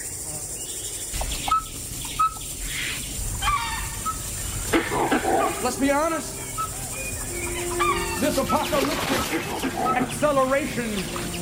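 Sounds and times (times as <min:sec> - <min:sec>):
steady outdoor hiss: 0:00.0 - 0:11.4
dhole calls, short high whistling notes: 0:01.2 - 0:02.5, 0:03.4 - 0:10.2
speech: 0:05.6 - 0:06.4, 0:08.2 - 0:11.4.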